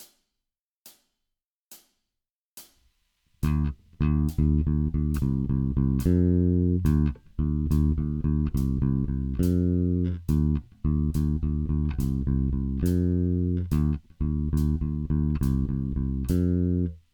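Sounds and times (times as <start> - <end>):
bass guitar playing heavy rock blues: 3.4 - 17.0.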